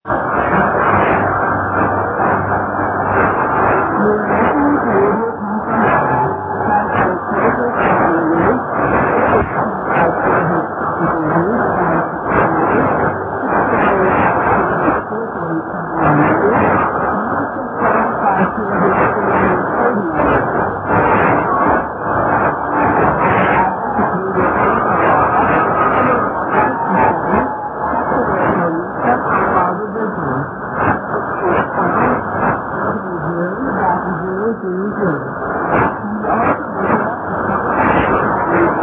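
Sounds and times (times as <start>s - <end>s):
shortwave radio signal on 9675 kHz: 0.0s - 38.8s.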